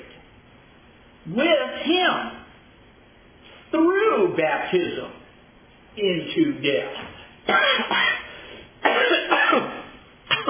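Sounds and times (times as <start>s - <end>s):
speech: 1.3s - 2.3s, 3.7s - 5.2s, 5.9s - 8.1s
person coughing: 7.5s - 10.4s
throat clearing: 7.5s - 10.4s.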